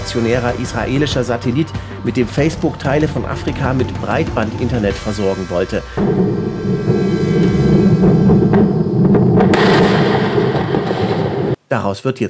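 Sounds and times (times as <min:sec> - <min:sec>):
speech: 0:00.1 - 0:06.8, 0:11.7 - 0:12.2
SpaceX rocket exploding on its launch pad during fueling at Cape Canaveral: 0:05.9 - 0:11.6
sharp cracking blasts of rocket explosion: 0:06.0 - 0:11.6.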